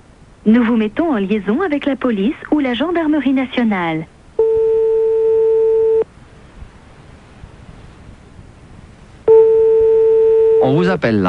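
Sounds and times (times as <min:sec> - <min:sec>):
speech: 0:00.4 - 0:04.1, 0:10.8 - 0:11.2
telephone busy signal: 0:04.4 - 0:06.1, 0:09.3 - 0:10.9.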